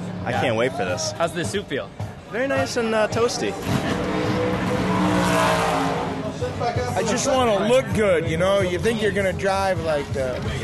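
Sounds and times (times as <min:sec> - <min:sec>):
speech: 0:00.2 - 0:05.7, 0:06.6 - 0:10.6
car engine held at 2,000 RPM before a race-car launch: 0:03.5 - 0:06.8.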